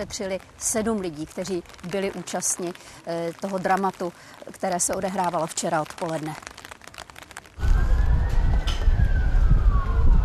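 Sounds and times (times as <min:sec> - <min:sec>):
speech: 0:00.0 - 0:06.5
ambulance sirens wailing: 0:07.6 - 0:10.2.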